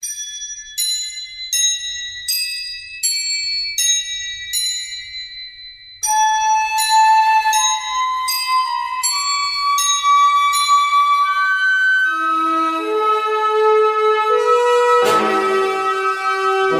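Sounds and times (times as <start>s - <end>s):
deep wind chimes: 0.0s - 16.7s.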